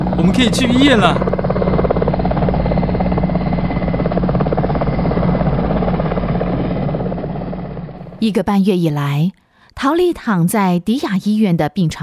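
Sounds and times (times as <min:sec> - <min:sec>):
arriving helicopter rotor chop with engine buzz: 0:00.0 - 0:08.7
speech: 0:00.2 - 0:01.3, 0:08.2 - 0:12.0.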